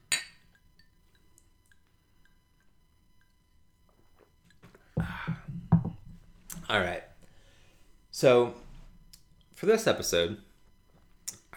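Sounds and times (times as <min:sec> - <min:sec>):
glasses clinking in a toast: 0:04.5 - 0:06.2
faint taps: 0:04.6 - 0:06.7
speech: 0:06.7 - 0:07.1, 0:08.2 - 0:08.6, 0:09.6 - 0:10.5.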